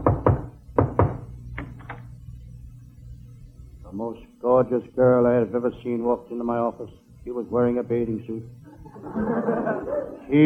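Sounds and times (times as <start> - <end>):
knocking on a door: 0.0 - 1.3
speech: 4.0 - 10.4
laughter: 8.8 - 10.4.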